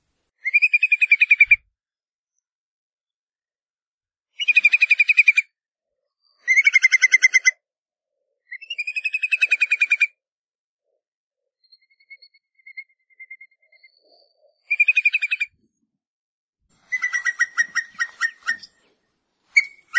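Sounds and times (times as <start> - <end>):
whimbrel calling with rippling whistled trills in Iceland: 0.4 - 1.6, 4.4 - 5.5, 6.4 - 7.6, 8.5 - 10.2, 11.6 - 15.6, 16.8 - 19.9.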